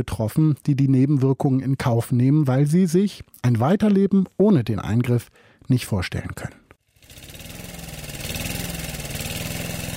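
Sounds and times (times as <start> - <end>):
speech: 0.0 - 6.6
small lawn mower engine running: 6.9 - 9.9.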